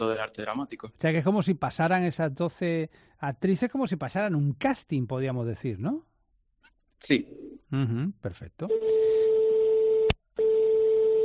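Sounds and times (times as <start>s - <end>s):
speech: 0.0s - 6.1s, 7.0s - 9.2s
phone line tone after a dropped call: 8.7s - 11.2s.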